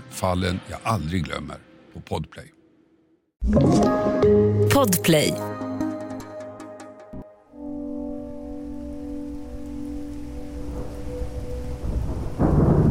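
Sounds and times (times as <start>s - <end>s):
speech: 0.2s - 2.6s, 3.4s - 5.6s
steady rain hissing: 8.1s - 12.9s
deep thunder rumbling over a small town in the eastern USA: 9.3s - 12.9s.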